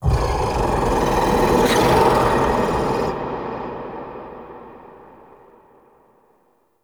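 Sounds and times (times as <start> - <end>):
large ambience of whispering voices: 0.0 - 4.4.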